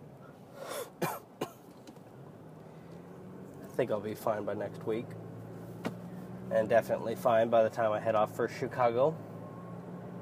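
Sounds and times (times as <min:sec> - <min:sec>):
rough coughs: 0:00.6 - 0:01.7
person clearing throat: 0:00.7 - 0:01.6
speech: 0:03.8 - 0:05.3, 0:06.5 - 0:09.3.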